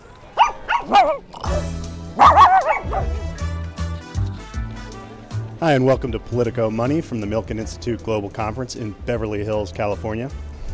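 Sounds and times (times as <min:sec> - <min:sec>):
small dogs barking and yipping: 0:00.3 - 0:03.3
speech: 0:00.9 - 0:03.2, 0:05.6 - 0:10.5
steady tonal hum or music: 0:01.4 - 0:06.4.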